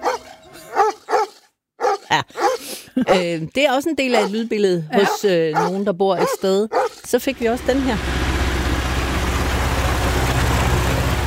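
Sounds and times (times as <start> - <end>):
speech: 2.1 - 8.2
tractor engine idling in South Funen Denmark: 7.1 - 11.2.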